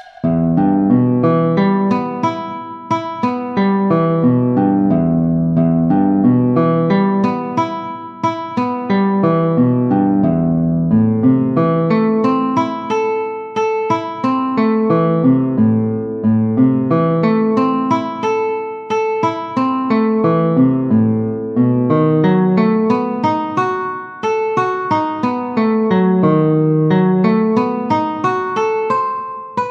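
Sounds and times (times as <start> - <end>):
gypsy guitar at 90 bpm: 0.3 - 29.6.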